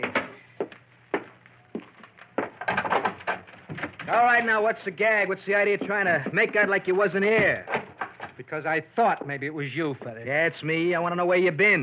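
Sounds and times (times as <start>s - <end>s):
wooden door giving way crashing and splintering: 2.5s - 4.4s, 6.4s - 8.4s
speech: 4.1s - 7.8s, 8.4s - 11.8s.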